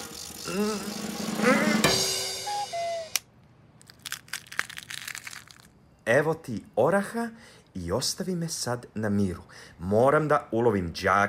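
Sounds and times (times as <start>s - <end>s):
short vocal sound: 0.4s - 1.9s
speech: 0.5s - 1.2s, 6.1s - 11.2s
walnuts cracking under a fist: 3.2s - 5.8s
walnut shell fragments crunching: 3.8s - 5.8s.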